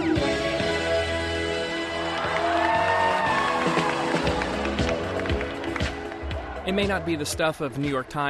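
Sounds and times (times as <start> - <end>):
music playing: 0.0 - 8.2
crowd cheering and clapping: 1.6 - 8.2
whoops and shouts: 2.0 - 4.3
speech: 6.7 - 8.2.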